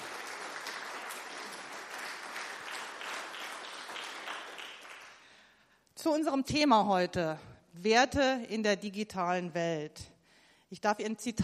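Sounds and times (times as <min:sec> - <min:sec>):
sustained applause from an audience: 0:00.0 - 0:05.3
speech: 0:06.0 - 0:10.1, 0:10.7 - 0:11.4.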